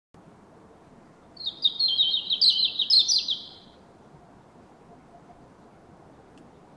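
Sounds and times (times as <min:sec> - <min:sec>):
faint low background hiss: 0:00.2 - 0:06.7
European robin singing tinkling warbled phrase, Erithacus rubecula: 0:01.4 - 0:03.6.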